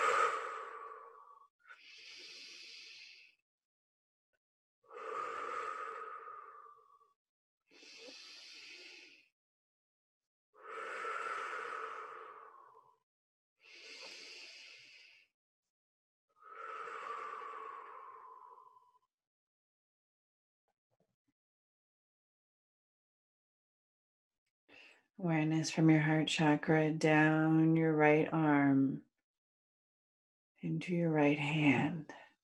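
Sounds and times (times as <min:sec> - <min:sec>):
deep breaths during a guided meditation: 0:00.0 - 0:03.4, 0:04.9 - 0:09.3, 0:10.6 - 0:13.0, 0:13.6 - 0:15.3, 0:16.4 - 0:19.1
speech: 0:25.2 - 0:29.1, 0:30.6 - 0:32.2.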